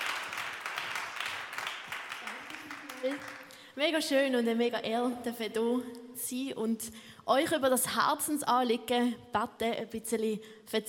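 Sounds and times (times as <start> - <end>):
crowd clapping: 0.0 - 3.7
speech: 3.0 - 10.8.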